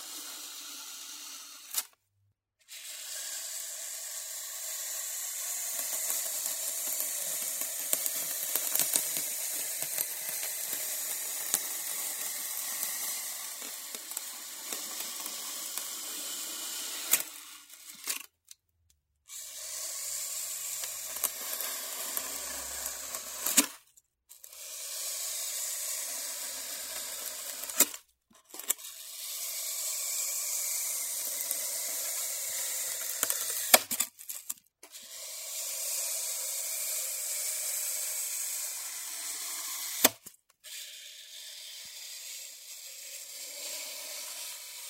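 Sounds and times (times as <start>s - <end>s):
cutting Styrofoam: 0.0s - 2.0s, 2.7s - 18.5s, 19.3s - 44.8s.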